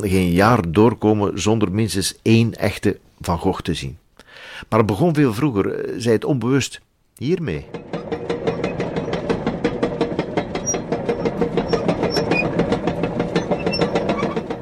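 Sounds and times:
speech: 0:00.0 - 0:08.2
loose wooden planks of a small Dutch drawbridge rattling as something rolls across: 0:07.6 - 0:14.5.

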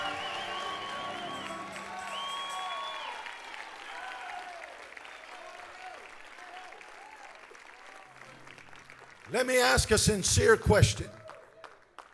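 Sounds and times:
large audience cheering with shouts and whoops: 0:00.0 - 0:08.1
large audience clapping: 0:00.0 - 0:12.1
speech: 0:09.3 - 0:11.2.

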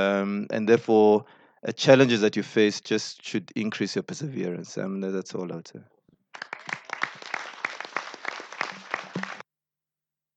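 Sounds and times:
speech: 0:00.0 - 0:06.5
audience applauding a panel: 0:06.4 - 0:09.4.

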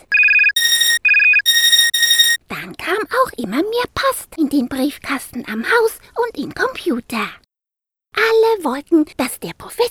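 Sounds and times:
loud electronic telephone ringtone trilling in two bright tonal patterns: 0:00.1 - 0:02.4
speech: 0:02.9 - 0:07.4, 0:08.2 - 0:09.9.

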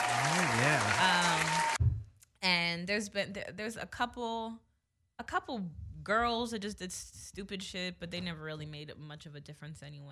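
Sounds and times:
crowd applause: 0:00.0 - 0:01.8
person cheering: 0:00.0 - 0:01.8
speech: 0:02.9 - 0:10.1.

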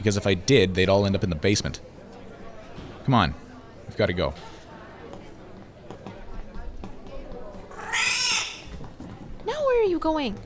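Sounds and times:
speech: 0:00.0 - 0:01.9, 0:03.1 - 0:04.6, 0:10.0 - 0:10.4
faint murmuring voices: 0:00.0 - 0:10.4
cat meowing: 0:07.7 - 0:08.7.

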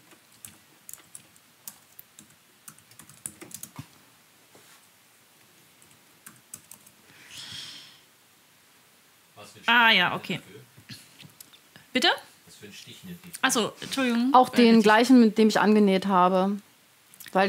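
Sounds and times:
typing on a computer keyboard into a chat: 0:00.0 - 0:03.8, 0:05.8 - 0:07.0
speech: 0:09.5 - 0:10.5, 0:12.0 - 0:16.7.

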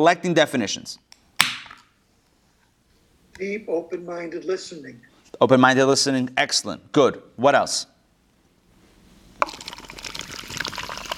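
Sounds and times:
speech: 0:00.0 - 0:01.1, 0:03.4 - 0:07.9
seltzer being poured and fizzing: 0:09.4 - 0:11.1.

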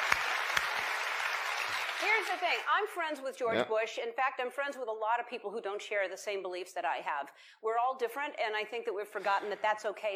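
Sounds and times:
audience applause: 0:00.0 - 0:02.7
crowd cheering: 0:00.0 - 0:02.7
speech: 0:02.2 - 0:10.1.

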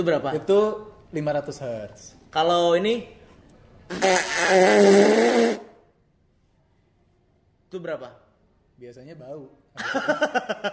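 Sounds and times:
speech: 0:00.0 - 0:03.2, 0:03.9 - 0:05.7, 0:07.7 - 0:08.2, 0:08.8 - 0:10.7
long loud buzzy raspy fart: 0:03.9 - 0:05.8.

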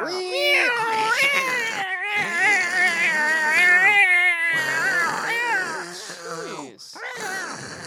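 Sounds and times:
human voices imitating cats meowing and fighting: 0:00.0 - 0:07.8.

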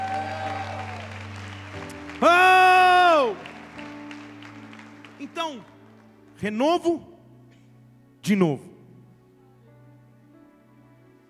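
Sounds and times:
congregation clapping and cheering: 0:00.0 - 0:06.9
speech: 0:02.2 - 0:02.4, 0:05.4 - 0:05.8, 0:06.4 - 0:07.1, 0:08.3 - 0:08.7.

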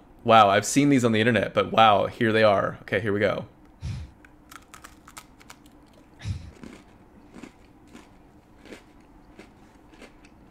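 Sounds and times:
speech: 0:00.2 - 0:03.6
crisp snack being bitten and chewed: 0:04.5 - 0:10.5.

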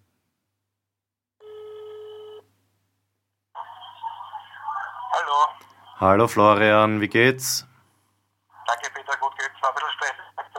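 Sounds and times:
electronic telephone ring: 0:01.4 - 0:02.5
thin phone-filtered voice talking: 0:03.6 - 0:07.8, 0:08.5 - 0:10.5
speech: 0:05.2 - 0:07.7.

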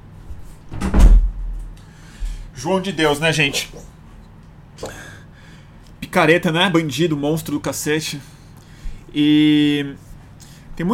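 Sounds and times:
office door swinging shut with a thud: 0:00.7 - 0:01.4
speech: 0:02.6 - 0:04.0, 0:06.2 - 0:08.4, 0:09.1 - 0:10.1, 0:10.8 - 0:10.9.

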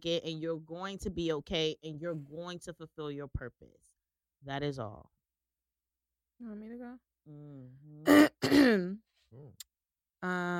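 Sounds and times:
speech: 0:00.0 - 0:05.2, 0:06.4 - 0:10.5
person murmuring: 0:06.4 - 0:08.2
person clearing throat: 0:08.0 - 0:09.6.

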